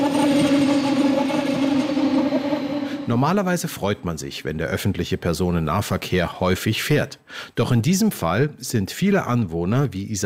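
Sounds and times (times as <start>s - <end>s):
train approaching and passing: 0.0s - 4.4s
speech: 3.1s - 10.2s.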